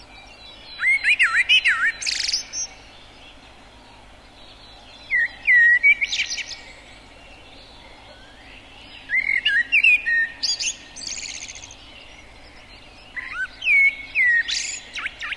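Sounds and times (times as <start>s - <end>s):
common blackbird singing: 0.0s - 15.3s.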